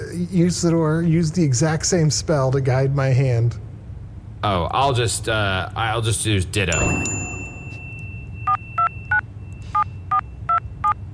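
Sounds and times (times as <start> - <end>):
low hum: 0.0 - 11.1
speech: 0.2 - 3.6, 4.4 - 7.2
touch-tone beeps of a phone number being dialed: 6.8 - 11.0.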